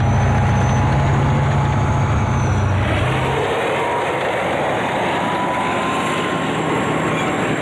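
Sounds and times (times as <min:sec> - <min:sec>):
military tanks driving at a tank training ground: 0:00.0 - 0:07.6.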